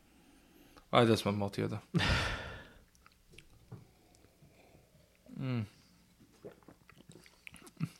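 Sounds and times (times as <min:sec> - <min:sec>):
speech: 0:00.9 - 0:02.2
wet mouth and lip noises: 0:02.8 - 0:04.3, 0:06.0 - 0:07.9
throaty swallow gulping down a glass of stout: 0:05.2 - 0:07.9.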